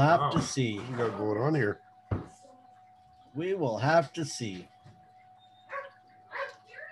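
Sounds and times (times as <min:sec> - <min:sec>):
speech: 0:00.0 - 0:01.8, 0:03.4 - 0:04.7
faint steady electrical hum: 0:00.0 - 0:06.9
female dog barking and yipping: 0:05.7 - 0:06.6.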